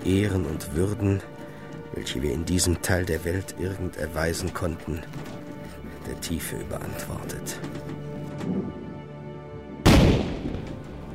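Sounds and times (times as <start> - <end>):
speech: 0.1 - 5.5, 6.1 - 7.8
cannon salute shot: 9.8 - 10.9.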